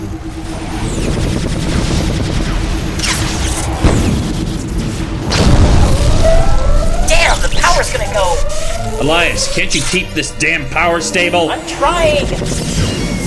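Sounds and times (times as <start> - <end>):
continuous rumble: 0.0 - 13.2
spaceship countermeasures firing against a launched missile: 1.1 - 11.0
speech: 9.0 - 13.0.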